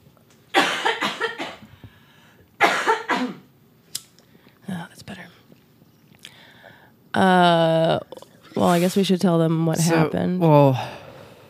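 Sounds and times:
harsh hacking coughs after smoking from a bong: 0.5 - 1.7, 2.6 - 3.5
speech: 7.2 - 8.0, 8.6 - 11.0.

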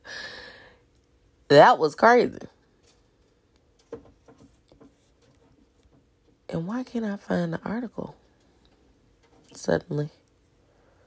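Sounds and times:
speech: 1.5 - 2.6, 6.5 - 8.2, 9.6 - 10.2
pet turtle shuffling and scratching: 2.7 - 6.5.

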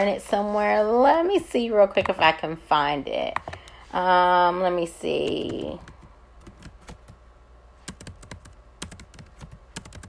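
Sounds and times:
speech: 0.0 - 5.9
typing on a computer keyboard: 5.2 - 7.2, 7.8 - 10.0.

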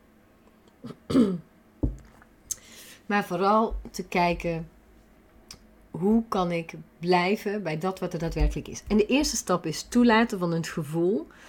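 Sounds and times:
light coughing: 0.8 - 1.5
throat clearing: 0.8 - 1.5
speech: 3.1 - 4.8, 6.0 - 11.4.

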